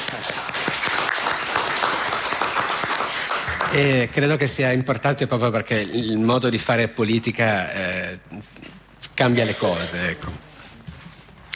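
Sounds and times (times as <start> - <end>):
crowd applauding: 0.0 - 4.1
speech: 3.7 - 8.6, 9.2 - 10.5.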